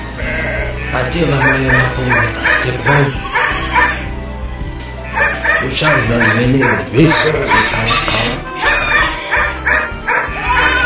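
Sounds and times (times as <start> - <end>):
speech: 0.9 - 3.3, 5.6 - 8.6
dog barking in a yard: 1.4 - 2.7, 3.3 - 4.0, 5.2 - 10.8.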